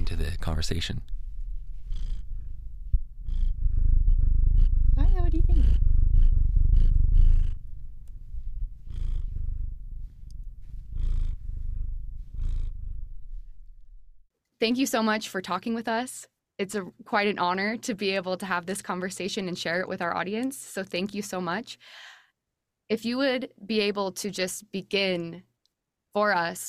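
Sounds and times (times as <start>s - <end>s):
domestic cat purring: 0.0s - 14.1s
speech: 0.1s - 1.2s, 14.6s - 22.1s, 22.9s - 25.5s, 26.1s - 26.6s.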